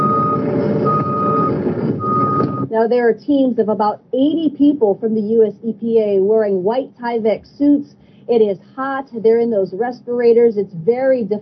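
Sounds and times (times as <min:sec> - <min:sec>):
truck reversing beeps at a gun range used as a hazardous waste site: 0:00.0 - 0:02.7
speech: 0:02.8 - 0:11.4.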